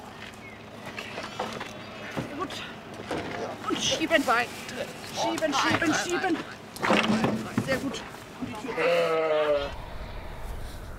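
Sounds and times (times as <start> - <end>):
steady outdoor rumble: 0.0 - 10.9
speech: 3.8 - 9.8
sheep from a driven flock bleating: 8.6 - 10.2.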